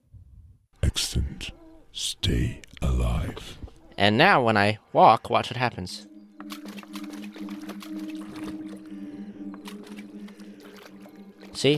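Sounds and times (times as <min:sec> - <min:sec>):
speech: 0:01.0 - 0:06.1, 0:11.6 - 0:11.7
video game sloshing and splashing water sound effects: 0:06.3 - 0:11.7.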